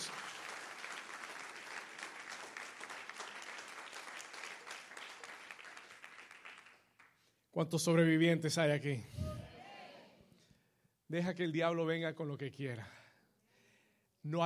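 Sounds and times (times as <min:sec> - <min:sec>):
large audience applauding loudly: 0:00.0 - 0:07.3
speech: 0:07.6 - 0:09.3, 0:11.1 - 0:13.0, 0:14.2 - 0:14.4.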